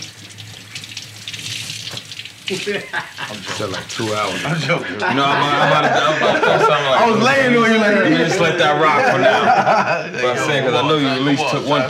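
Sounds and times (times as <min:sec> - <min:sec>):
running tap water rinsing items: 0:00.0 - 0:05.6
laughter: 0:02.5 - 0:11.3
speech: 0:02.5 - 0:11.8.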